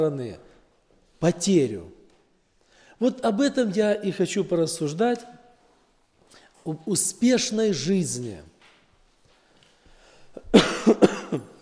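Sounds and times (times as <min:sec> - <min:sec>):
speech: 0:00.0 - 0:00.5, 0:01.2 - 0:02.0, 0:03.0 - 0:05.4, 0:06.6 - 0:08.5
person coughing: 0:10.4 - 0:11.5.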